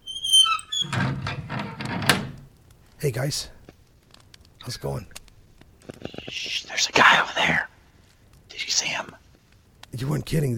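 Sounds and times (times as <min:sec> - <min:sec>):
door creaking open with a high squeal: 0:00.0 - 0:02.5
speech: 0:03.0 - 0:03.6, 0:04.7 - 0:05.2, 0:06.3 - 0:07.7, 0:10.0 - 0:10.5.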